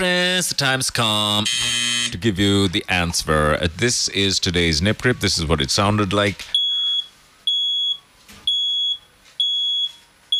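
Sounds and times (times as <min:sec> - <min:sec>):
speech: 0:00.4 - 0:06.6
smoke detector alarm beeping: 0:01.4 - 0:02.2, 0:06.6 - 0:10.3.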